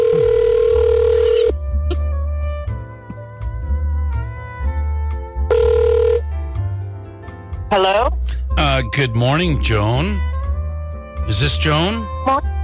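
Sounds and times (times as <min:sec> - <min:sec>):
outgoing phone call electronic ringing tone: 0:00.0 - 0:01.5, 0:05.5 - 0:06.2
music: 0:00.0 - 0:12.6
speech: 0:07.7 - 0:08.2, 0:08.8 - 0:10.3, 0:11.3 - 0:12.6.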